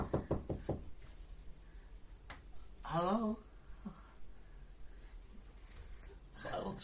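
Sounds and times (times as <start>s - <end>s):
quick knocks on a door: 0.0s - 0.9s
faint noise: 0.0s - 6.8s
speech: 2.9s - 3.5s.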